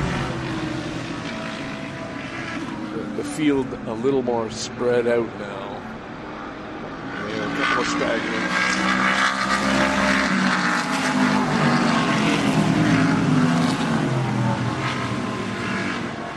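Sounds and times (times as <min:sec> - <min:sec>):
race car engines roaring climbing uphill: 0:00.0 - 0:16.3
speech: 0:03.2 - 0:05.7, 0:07.8 - 0:09.0.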